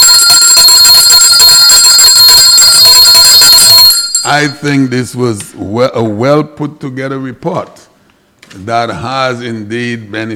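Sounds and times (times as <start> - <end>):
hand bell rung rapidly: 0.0 - 5.0
speech: 4.3 - 7.8, 8.6 - 10.3.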